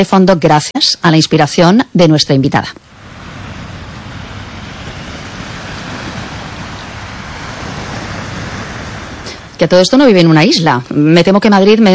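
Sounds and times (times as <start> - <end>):
speech: 0.0 - 2.9, 9.6 - 11.9
sea surf washing: 2.5 - 11.4.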